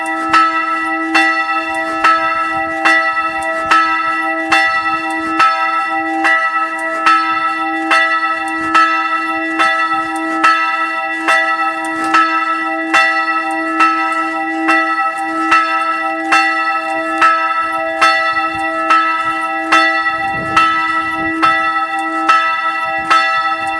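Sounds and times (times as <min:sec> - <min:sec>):
bells ringing: 0:00.0 - 0:23.7.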